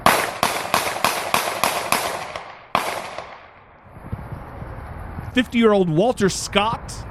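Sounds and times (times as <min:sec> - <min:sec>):
gunshots from a police shooting in South Carolina: 0:00.0 - 0:03.6
speech: 0:05.4 - 0:07.0.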